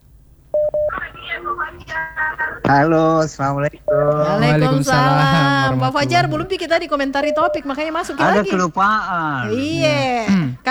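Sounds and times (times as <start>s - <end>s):
telephone keypad tones dialling a number: 0.6s - 2.7s, 3.8s - 4.6s, 7.2s - 7.7s
speech: 1.4s - 10.6s
laughter: 3.9s - 10.6s.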